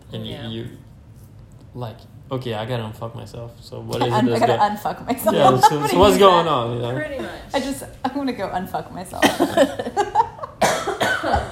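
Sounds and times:
speech: 0:00.1 - 0:00.9, 0:01.7 - 0:10.1
person coughing: 0:10.6 - 0:11.4.

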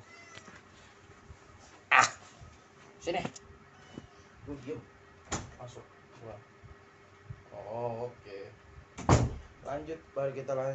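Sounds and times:
pet cat meowing insistently: 0:00.0 - 0:00.6
speech: 0:03.1 - 0:03.5, 0:04.5 - 0:05.0, 0:05.6 - 0:06.5, 0:07.6 - 0:08.6, 0:09.7 - 0:10.7.

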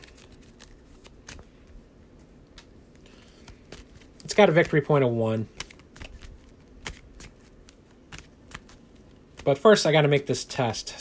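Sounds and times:
card game encounter deck being shuffled: 0:00.0 - 0:01.8, 0:02.9 - 0:09.8
speech: 0:04.3 - 0:05.6, 0:09.5 - 0:11.0.

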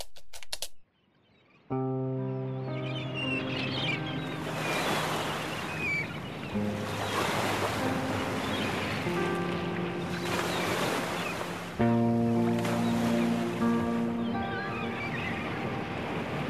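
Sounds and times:
wind: 0:00.9 - 0:16.4
water lapping against the shore of the Kyiv Reservoir on the Dnipro: 0:04.2 - 0:16.4.

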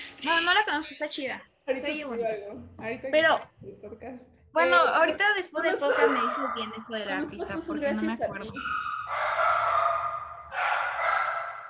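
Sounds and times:
speech: 0:00.2 - 0:09.6
small female dog barking high-pitched: 0:05.8 - 0:06.8, 0:08.6 - 0:11.6.

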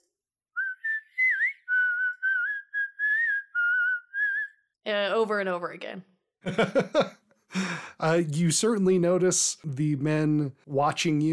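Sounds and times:
woman whistling a short lilting melody: 0:00.6 - 0:04.7
speech: 0:04.9 - 0:11.3
laughter: 0:06.5 - 0:07.9.

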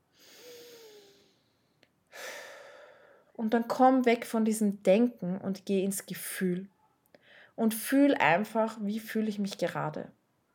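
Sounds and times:
deep breath in and out in a guided breathing exercise: 0:00.1 - 0:03.3, 0:07.2 - 0:07.6
speech: 0:03.4 - 0:06.7, 0:07.6 - 0:10.2.

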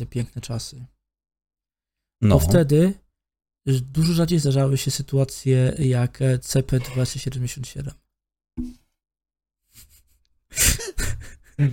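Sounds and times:
speech: 0:00.0 - 0:01.0, 0:02.2 - 0:03.0, 0:03.6 - 0:08.0, 0:08.6 - 0:08.8, 0:11.6 - 0:11.7
person yawning: 0:02.2 - 0:02.6.

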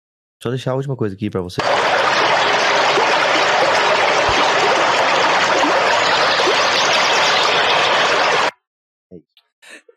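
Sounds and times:
speech: 0:00.4 - 0:02.2
stream water flowing: 0:01.6 - 0:08.5.

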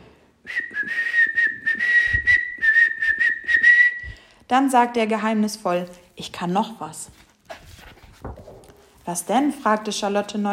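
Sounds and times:
whistling through the teeth: 0:00.4 - 0:04.2
speech: 0:04.5 - 0:07.2, 0:09.1 - 0:10.5.

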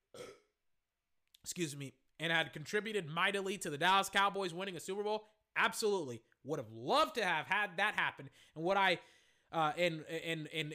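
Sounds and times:
loud burp with a throaty drawn-out rumble: 0:00.0 - 0:00.5
speech: 0:01.4 - 0:10.7.

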